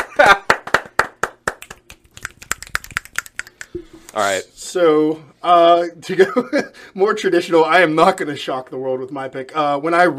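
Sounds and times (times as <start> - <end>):
hand clapping: 0.0 - 3.7
speech: 4.1 - 10.1.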